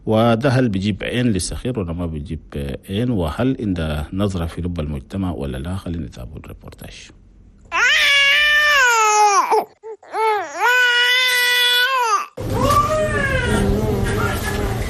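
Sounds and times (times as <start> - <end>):
speech: 0.1 - 7.2
hungry infant crying: 7.7 - 13.9.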